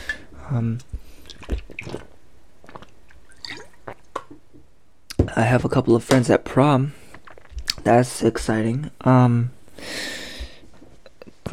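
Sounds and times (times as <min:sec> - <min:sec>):
person drinking water: 0:00.0 - 0:04.5, 0:07.0 - 0:07.8
speech: 0:00.5 - 0:01.0, 0:05.4 - 0:07.0, 0:07.8 - 0:09.6.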